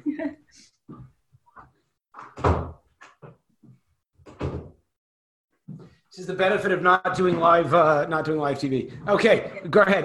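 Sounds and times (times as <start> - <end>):
office door pushed shut: 4.2 - 4.8
speech: 6.2 - 10.0.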